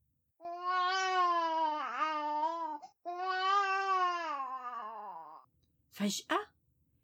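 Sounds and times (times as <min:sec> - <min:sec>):
newborn baby crying: 0:00.4 - 0:05.5
speech: 0:06.0 - 0:06.4.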